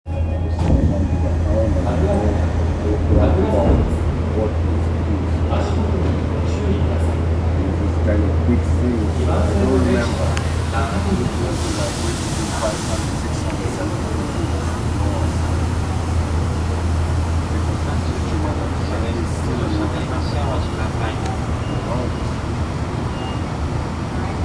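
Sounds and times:
Tozai Line subway station Kagurazaka west: 0.0s - 24.4s.

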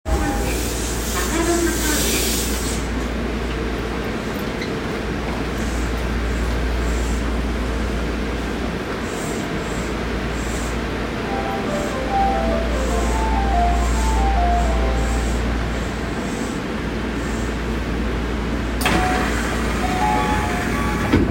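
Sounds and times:
Toei Oedo Line train sounds: 0.1s - 21.2s.

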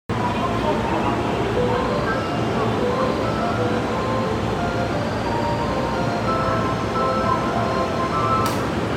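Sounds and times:
Keihin-Tohoku Line train at Konandai: 0.1s - 8.9s.

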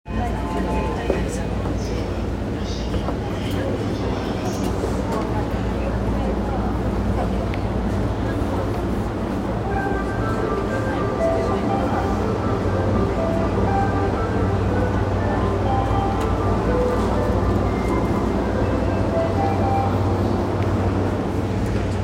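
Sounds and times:
JR Yamanote Line train sounds at Tabata: 0.1s - 22.0s.

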